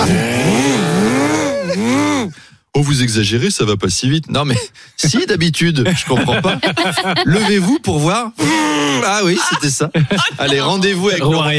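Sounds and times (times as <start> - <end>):
quad bike engine revving: 0.0 - 2.4
laughter: 1.1 - 2.1, 5.8 - 11.2
speech: 2.8 - 11.5.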